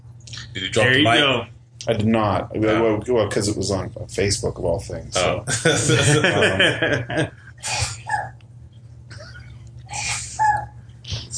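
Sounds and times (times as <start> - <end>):
steady low hum: 0.0 - 11.3
speech: 0.5 - 8.0
laughter: 5.4 - 7.5
person sneezing: 7.6 - 8.3.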